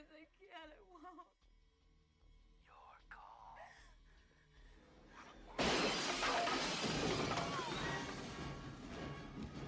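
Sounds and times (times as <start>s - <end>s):
speech: 0.2s - 1.5s
chair smashing through a pane of glass: 5.6s - 8.4s.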